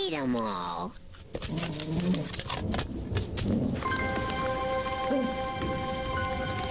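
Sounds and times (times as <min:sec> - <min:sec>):
speech: 0:00.1 - 0:04.2
steady rain pattering: 0:02.0 - 0:06.6
sustained high tones: 0:03.8 - 0:06.6.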